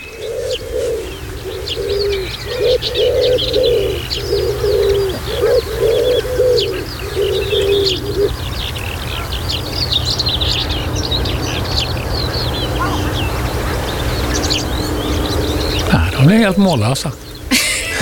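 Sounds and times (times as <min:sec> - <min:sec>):
chorus of other birds: 0:00.0 - 0:17.9
common redstart singing trilling strophes in Halland Sweden: 0:00.0 - 0:17.9
dove cooing: 0:00.0 - 0:17.9
speech: 0:02.8 - 0:03.6, 0:16.4 - 0:17.3
laughter: 0:15.8 - 0:17.9.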